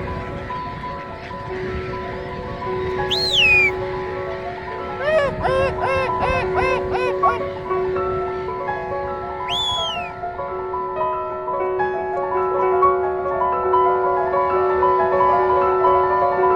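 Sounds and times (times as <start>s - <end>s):
steady busy outdoor background: 0.0s - 16.4s
flock of birds taking flight: 3.1s - 3.7s
birds with loud overlapping calls and rapid chirping: 3.1s - 3.8s, 5.0s - 7.4s, 9.5s - 10.1s.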